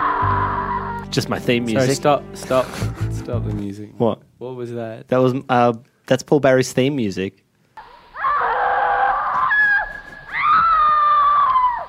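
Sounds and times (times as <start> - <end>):
woman screaming high-pitched: 0.0 - 1.1, 7.8 - 11.8
speech: 1.1 - 7.4.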